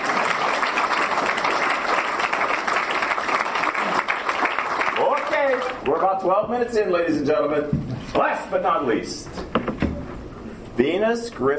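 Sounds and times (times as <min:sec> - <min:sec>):
audience applause: 0:00.0 - 0:05.9
speech: 0:05.8 - 0:09.4, 0:10.8 - 0:11.5.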